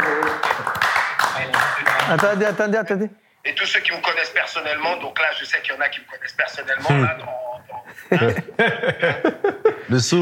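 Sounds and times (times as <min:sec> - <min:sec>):
group of people clapping: 0:00.0 - 0:02.6
speech: 0:02.1 - 0:07.4, 0:08.0 - 0:10.2
laughter: 0:07.7 - 0:09.9.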